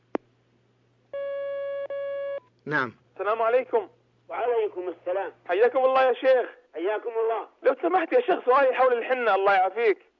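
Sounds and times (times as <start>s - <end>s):
single-pitched telephone line tone: 1.2s - 2.4s
speech: 2.6s - 10.1s.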